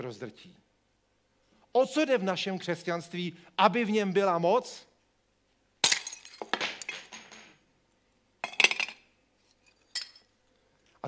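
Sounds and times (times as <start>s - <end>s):
speech: 0.0s - 0.7s, 1.7s - 4.9s
broken glass shards clinking and rattling: 5.8s - 7.5s, 8.4s - 9.0s, 9.6s - 10.3s.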